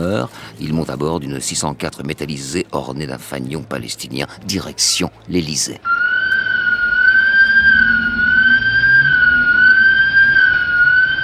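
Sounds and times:
speech: 0.0s - 6.0s
shop alarm sirens in Paris: 5.8s - 11.2s
low rumble: 5.9s - 11.2s.

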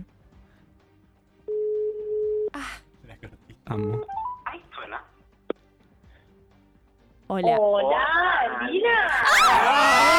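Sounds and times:
telephone ringback tone while a call is placed: 1.5s - 2.5s
speech: 3.7s - 4.2s, 7.3s - 10.1s.

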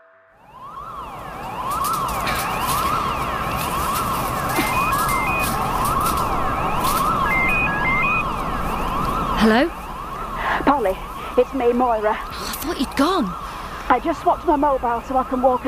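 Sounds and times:
alarm siren wailing: 0.0s - 15.6s
speech: 9.4s - 9.8s, 11.4s - 15.6s.

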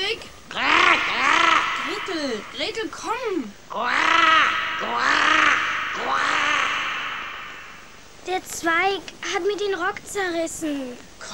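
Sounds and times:
raven giving loud harsh drawn-out caws: 0.5s - 8.1s
speech: 2.4s - 6.5s, 8.2s - 11.3s.

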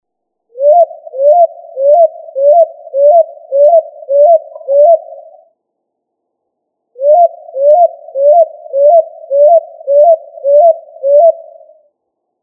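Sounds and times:
pigeon hooting upslurred notes: 0.5s - 5.4s, 7.0s - 11.8s.

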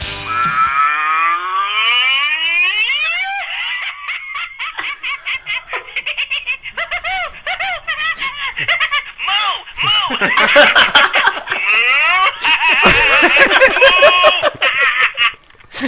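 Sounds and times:
long wavering electronic tone climbing steadily: 0.0s - 3.6s
novelty crazy-cow phone ringtone: 0.2s - 4.2s
laughter: 2.8s - 15.8s.

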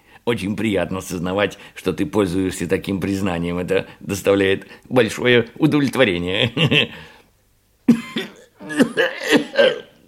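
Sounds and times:
speech: 0.2s - 7.1s
voice performer coughing angrily: 7.9s - 10.0s.

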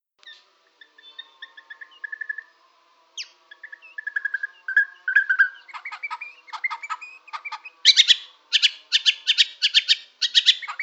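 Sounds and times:
White-rumped shama song in Borneo: 0.3s - 2.6s, 3.2s - 10.8s.

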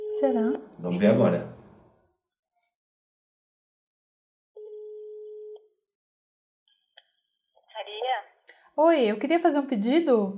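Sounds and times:
telephone tone after a dropped call: 0.0s - 0.6s, 4.6s - 5.7s
speech: 0.2s - 1.6s, 8.8s - 10.3s.

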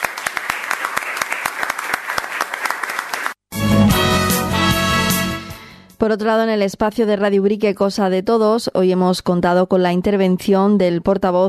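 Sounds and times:
audience applauding: 0.0s - 3.4s
music: 3.5s - 6.0s
speech: 6.0s - 11.4s.

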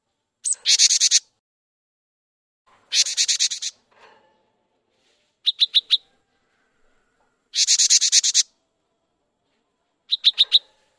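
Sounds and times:
cinereous tit song mixing harsh buzzy rattles and bright whistled notes: 0.4s - 1.2s, 2.9s - 3.7s, 5.5s - 6.0s, 7.6s - 8.4s, 10.1s - 10.7s.

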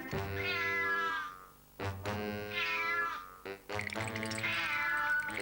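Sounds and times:
cartoon tomcat-penguin meowing: 0.2s - 1.4s, 2.5s - 3.4s, 4.3s - 5.3s.

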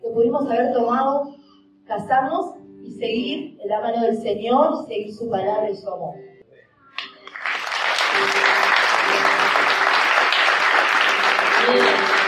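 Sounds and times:
speech: 0.2s - 6.3s
church congregation applauding at a Sunday service: 7.0s - 12.2s.

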